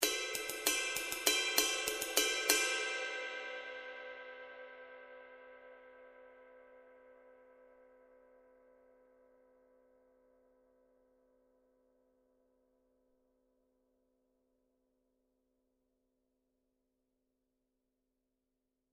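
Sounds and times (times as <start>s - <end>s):
22in custom high definition ride cymbal: 0.0s - 4.0s.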